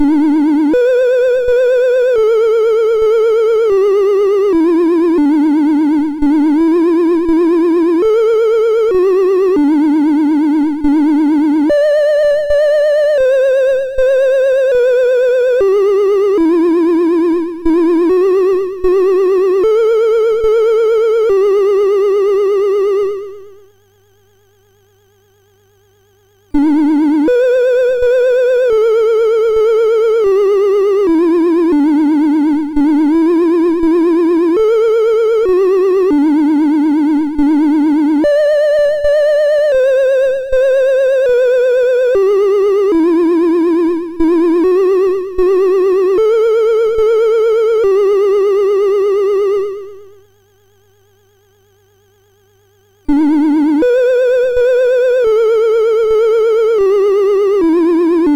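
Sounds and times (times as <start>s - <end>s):
chiptune tune on MOS6581R4 SID chip: 0.0s - 23.8s, 26.6s - 50.6s, 53.1s - 58.3s.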